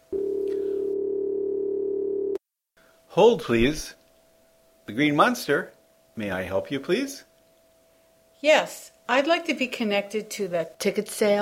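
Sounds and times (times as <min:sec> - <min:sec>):
steady telephone ringback tone: 0:00.1 - 0:02.4
speech: 0:03.2 - 0:04.0, 0:04.9 - 0:07.3, 0:08.4 - 0:11.4.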